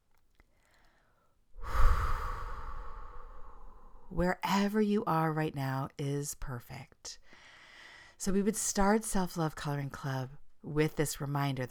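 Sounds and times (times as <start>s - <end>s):
deep breath drawn in and slowly let out: 0.6s - 4.2s, 7.3s - 8.2s
speech: 4.2s - 7.4s, 8.2s - 11.6s.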